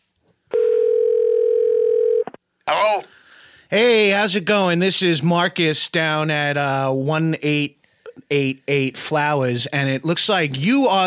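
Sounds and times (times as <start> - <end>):
electronic telephone ringing tone: 0.5 - 2.3
speech: 2.8 - 11.0.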